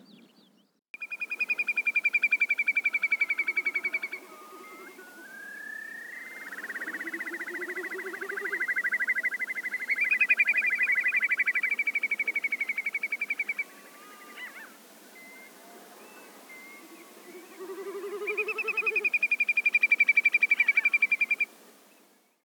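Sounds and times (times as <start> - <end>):
Numenius phaeopus whimbrel calling: 1.0 - 14.7, 17.5 - 21.5.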